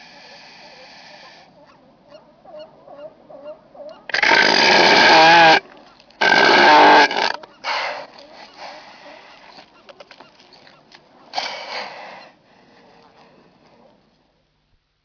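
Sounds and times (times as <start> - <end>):
Northern elephant seal groaning calls: 3.0 - 5.6, 6.2 - 7.8
Northern elephant seal quiet grunts and clicks: 7.4 - 11.3, 12.9 - 14.3.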